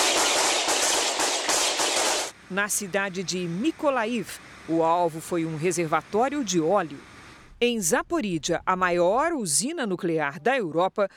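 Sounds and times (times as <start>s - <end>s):
gunfire shooting at attack drones: 0.0s - 2.4s
speech: 2.5s - 11.1s.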